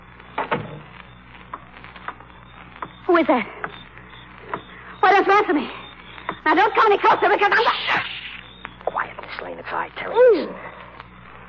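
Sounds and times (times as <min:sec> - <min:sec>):
door creak: 0:00.4 - 0:00.8
speech: 0:03.1 - 0:03.6, 0:05.1 - 0:05.8, 0:06.4 - 0:08.1, 0:09.5 - 0:10.7.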